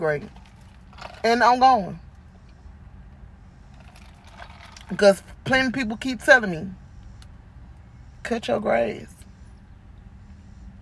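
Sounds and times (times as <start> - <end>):
speech: 0.0 - 0.5, 1.2 - 2.0, 4.9 - 6.8, 8.2 - 9.2
steady low rumble inside a car: 0.0 - 10.8
faint rattles inside a car: 0.2 - 1.5, 3.7 - 5.0.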